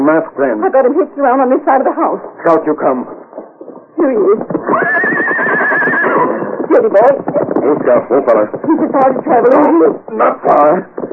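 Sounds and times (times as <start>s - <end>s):
speech: 0.2s - 3.3s, 4.0s - 5.6s, 6.7s - 11.1s
horse breathy snorting: 1.9s - 11.1s
horse neighing: 4.0s - 10.7s.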